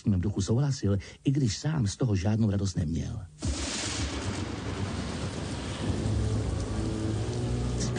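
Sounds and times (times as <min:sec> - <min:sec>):
speech: 0:00.0 - 0:03.5
deep rolling thunder: 0:03.4 - 0:07.8
heavy rain around a shack by the sea at night: 0:03.5 - 0:07.9.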